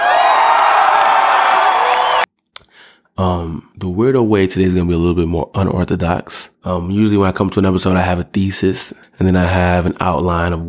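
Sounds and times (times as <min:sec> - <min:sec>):
applause: 0:00.0 - 0:02.3
crowd cheering and whooping: 0:00.0 - 0:02.3
speech: 0:03.2 - 0:10.6.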